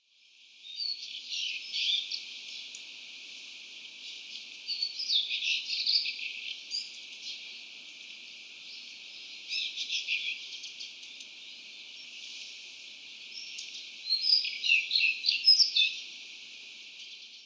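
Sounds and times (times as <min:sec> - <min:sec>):
Daurian Redstart calling in Utsunomiya: 0:00.6 - 0:02.7, 0:03.9 - 0:07.6, 0:08.7 - 0:12.2, 0:13.2 - 0:16.1.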